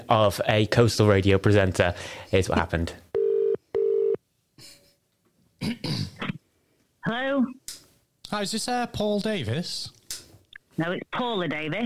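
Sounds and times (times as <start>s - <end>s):
speech: 0.1s - 3.1s, 5.6s - 6.1s, 7.1s - 7.6s, 8.3s - 10.0s, 10.8s - 11.8s
telephone ring tone: 3.2s - 4.2s.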